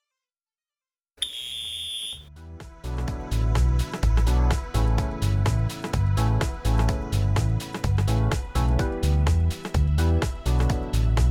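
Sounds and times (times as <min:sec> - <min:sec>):
workout interval timer buzzer: 0:01.2 - 0:02.2
upbeat music with a driving beat: 0:02.6 - 0:11.2.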